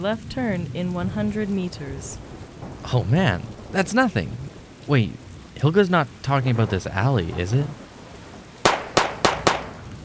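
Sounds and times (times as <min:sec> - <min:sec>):
speech: 0:00.0 - 0:07.8
gunshots: 0:08.6 - 0:10.0.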